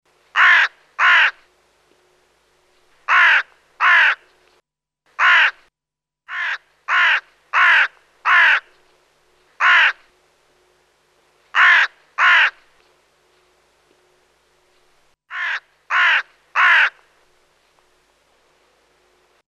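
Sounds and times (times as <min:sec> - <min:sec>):
hooded crow: 0:00.4 - 0:01.4, 0:03.1 - 0:04.2, 0:05.2 - 0:05.6, 0:06.3 - 0:08.7, 0:09.6 - 0:10.0, 0:11.6 - 0:12.6, 0:15.3 - 0:17.0.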